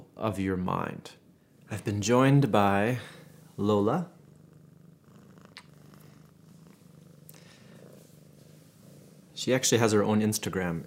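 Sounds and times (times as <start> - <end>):
speech: 0.2 - 4.2, 9.4 - 10.8
female cat purring: 2.6 - 10.8
faint clicks and shuffles: 5.5 - 10.8.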